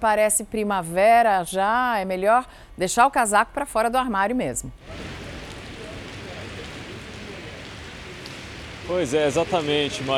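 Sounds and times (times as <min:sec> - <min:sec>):
speech: 0:00.0 - 0:05.2, 0:08.9 - 0:10.1
steady rain pattering on surfaces: 0:04.8 - 0:10.1.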